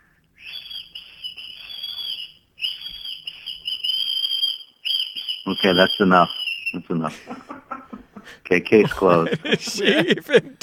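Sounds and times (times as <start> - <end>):
person whistling a high note: 0.4 - 6.8
speech: 5.5 - 7.5, 8.5 - 10.6
laughter: 6.9 - 10.6.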